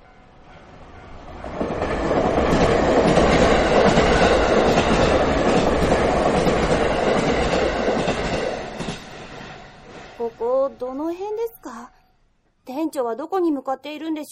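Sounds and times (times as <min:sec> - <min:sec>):
subway train rumbling along the rails: 0:00.0 - 0:10.8
speech: 0:13.1 - 0:14.3.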